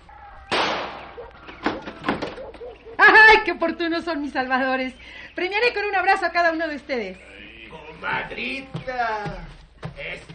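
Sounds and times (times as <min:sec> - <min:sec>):
door banging and rattling as it gives way: 0:01.5 - 0:02.6
speech: 0:03.4 - 0:07.4, 0:08.0 - 0:09.4, 0:10.0 - 0:10.3.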